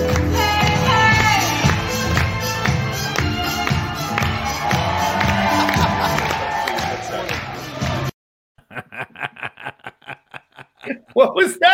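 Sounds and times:
large crowd cheering and roaring during a warm-up act: 0:00.1 - 0:08.1
laughter: 0:05.3 - 0:06.7, 0:08.6 - 0:11.7.

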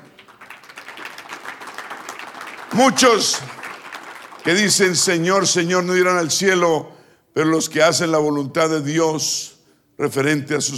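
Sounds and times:
congregation applauding: 0:00.0 - 0:05.7
speech: 0:02.7 - 0:03.6, 0:04.4 - 0:10.7.

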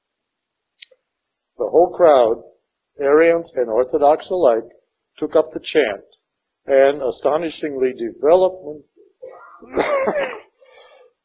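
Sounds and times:
speech: 0:01.6 - 0:08.9
lecturer's harsh cough: 0:09.2 - 0:10.7.

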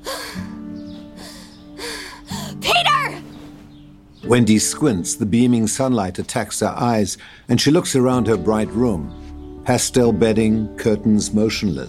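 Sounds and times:
woman gasping awake from a nightmare: 0:00.0 - 0:02.6
speech: 0:04.3 - 0:11.8.

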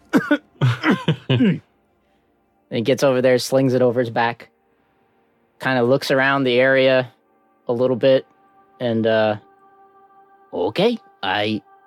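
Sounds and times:
person coughing raspily: 0:00.0 - 0:01.7
speech: 0:01.4 - 0:01.7, 0:02.7 - 0:04.5, 0:05.6 - 0:09.4, 0:10.5 - 0:11.7.

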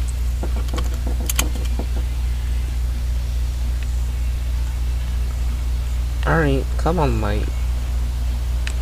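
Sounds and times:
turbocharged SUV engine driving in a video game: 0:00.0 - 0:08.7
speech: 0:06.3 - 0:07.6.

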